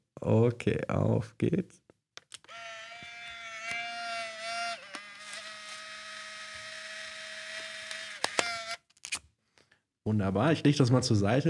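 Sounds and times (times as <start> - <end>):
speech: 0.2 - 1.8, 10.1 - 11.4
sharp clicks: 2.2 - 8.8
Polaroid instant photo ejecting with high-pitched mechanical whir: 2.5 - 8.8
Polaroid instant camera shutter click: 3.7 - 8.8.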